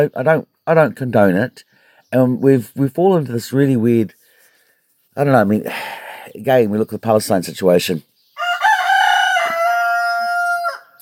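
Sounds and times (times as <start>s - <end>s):
speech: 0.0s - 4.2s, 5.2s - 8.1s
rooster crowing: 8.4s - 10.9s.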